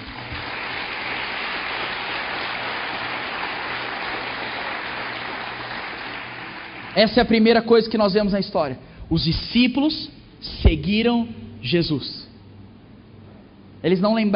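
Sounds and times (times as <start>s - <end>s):
large audience applauding in a big room: 0.0s - 7.3s
speech: 7.0s - 12.2s, 13.8s - 14.3s.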